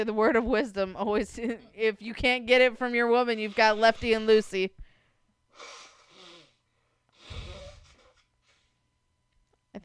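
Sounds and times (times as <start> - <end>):
speech: 0.0 - 4.8
person blowing nose: 3.4 - 4.5, 5.5 - 8.7.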